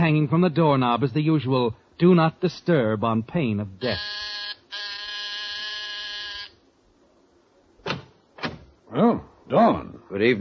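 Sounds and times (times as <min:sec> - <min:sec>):
speech: 0:00.0 - 0:04.4, 0:08.9 - 0:10.3
apartment door buzzer being pressed: 0:03.8 - 0:06.6.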